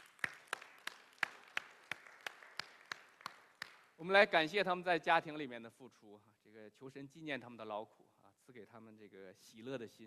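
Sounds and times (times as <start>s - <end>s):
faint audience applause: 0.0s - 3.8s
speech: 4.0s - 10.0s.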